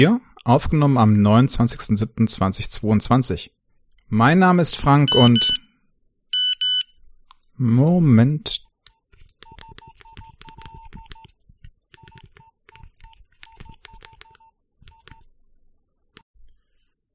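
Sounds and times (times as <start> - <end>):
speech: 0.0 - 5.6, 7.6 - 8.6
Nokia 6210 mobile phone SMS message alert beeps: 5.1 - 5.6, 6.4 - 6.9.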